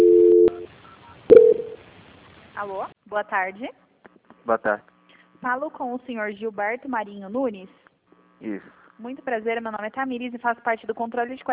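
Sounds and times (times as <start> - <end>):
telephone transfer beeps: 0.0 - 0.7, 1.3 - 1.8
speech: 2.6 - 3.8, 4.5 - 7.8, 8.4 - 11.5.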